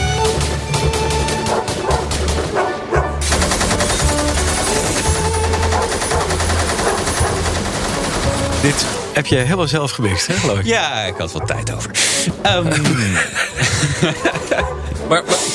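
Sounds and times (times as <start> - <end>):
machine gun fire: 0.2 - 2.6, 3.2 - 9.1
dogs barking: 1.4 - 3.3, 5.6 - 8.0, 8.7 - 12.5, 13.4 - 15.5
speech: 9.2 - 15.5
laughter: 9.6 - 15.5.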